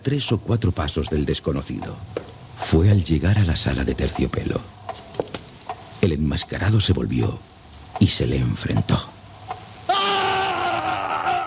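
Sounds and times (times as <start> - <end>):
speech: 0.0 - 4.8, 6.0 - 9.1
person screaming: 9.9 - 11.4.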